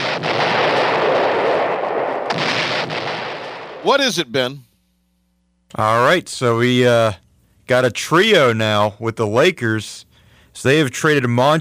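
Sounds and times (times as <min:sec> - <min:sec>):
bomb explosion sound effect: 0:00.0 - 0:04.0
speech: 0:03.8 - 0:04.7, 0:05.7 - 0:11.6.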